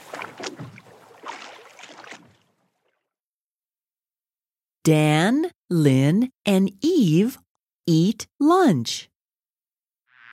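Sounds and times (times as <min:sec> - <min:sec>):
oars rowing a boat through water: 0:00.0 - 0:03.1
speech: 0:04.8 - 0:09.1.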